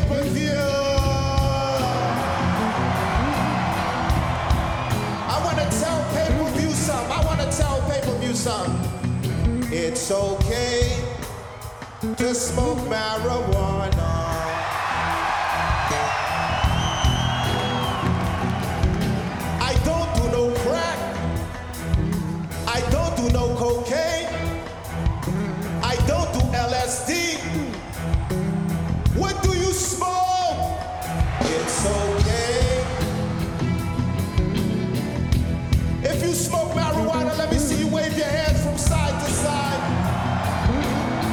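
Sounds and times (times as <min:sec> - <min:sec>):
large audience cheering and whooping: 0:00.0 - 0:41.3
speech: 0:12.0 - 0:14.1.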